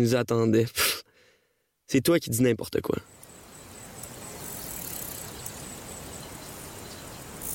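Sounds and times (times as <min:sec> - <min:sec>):
speech: 0:00.0 - 0:00.9, 0:01.9 - 0:03.2
insects buzzing by a lake: 0:03.0 - 0:07.5
soft hissy outdoor ambient background: 0:03.0 - 0:07.5.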